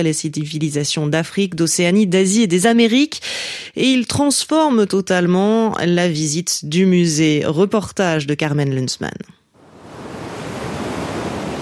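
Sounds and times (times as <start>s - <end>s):
speech: 0.0s - 9.4s
icy wind blowing in the far north: 9.6s - 11.6s.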